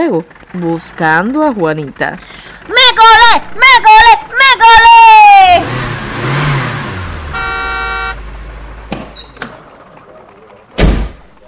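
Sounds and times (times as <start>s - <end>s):
speech: 0.0s - 5.8s
delivery truck rumbling and idling: 0.0s - 11.4s
delivery truck horn honk: 7.2s - 8.4s
sharp clunks: 8.9s - 9.6s, 10.8s - 11.3s.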